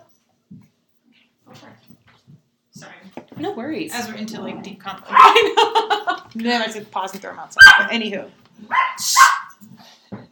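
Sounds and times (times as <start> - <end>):
speech: 2.8 - 9.4
dog barking: 5.1 - 5.6, 7.6 - 8.0, 8.7 - 9.6
laughter: 5.2 - 6.3.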